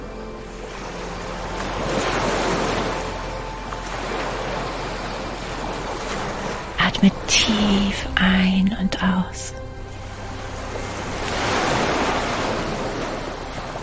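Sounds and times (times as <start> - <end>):
Pacific Ocean surf swelling and receding: 0.0 - 13.8
soft whispery voice speaking: 6.8 - 9.6
speech: 7.0 - 9.6.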